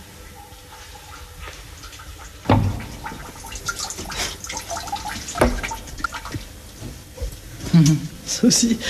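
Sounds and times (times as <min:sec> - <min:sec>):
water running from an open tap: 0:01.9 - 0:06.5
speech: 0:07.8 - 0:08.8.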